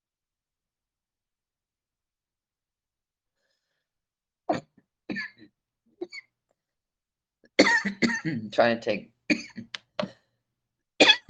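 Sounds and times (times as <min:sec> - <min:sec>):
harsh raspy coughing after a hard smoking hit: 0:04.5 - 0:06.3, 0:07.6 - 0:08.4, 0:09.3 - 0:09.7, 0:11.0 - 0:11.2
speech: 0:08.2 - 0:09.4.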